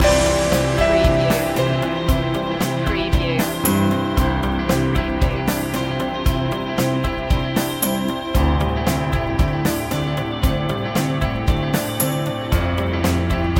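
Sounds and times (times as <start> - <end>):
rock ballad light rock music loop: 0.0 - 13.5.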